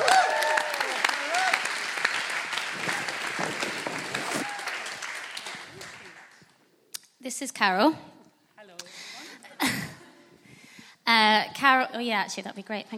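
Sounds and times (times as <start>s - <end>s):
faint audience voices and cheers: 0.0s - 1.7s, 2.7s - 5.0s
audience applause: 0.0s - 6.4s
speech: 7.3s - 8.1s, 11.9s - 12.9s.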